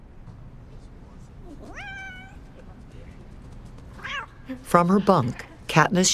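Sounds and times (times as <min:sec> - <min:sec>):
cat meowing while chasing a flashlight beam in a bunker: 0:01.5 - 0:02.6, 0:03.9 - 0:04.5
speech: 0:04.5 - 0:06.1.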